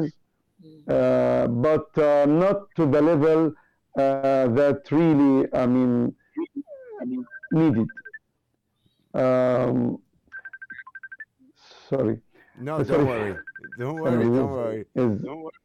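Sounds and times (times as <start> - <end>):
speech: 0.0 - 8.0, 9.2 - 10.0, 11.9 - 15.6
phone ringing with a rapid high beeping trill: 6.4 - 8.2, 10.3 - 11.3, 12.8 - 14.6.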